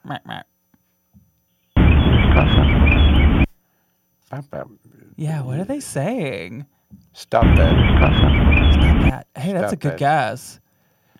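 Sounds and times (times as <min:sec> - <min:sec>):
speech: 0:00.1 - 0:00.5, 0:04.9 - 0:10.6
birds chirping: 0:01.5 - 0:03.5, 0:07.4 - 0:09.1.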